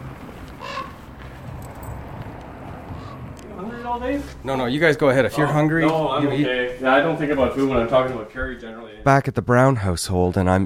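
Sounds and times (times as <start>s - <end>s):
big raven cawing: 0.0s - 4.6s
steady outdoor hiss: 0.0s - 9.1s
speech: 3.9s - 10.6s.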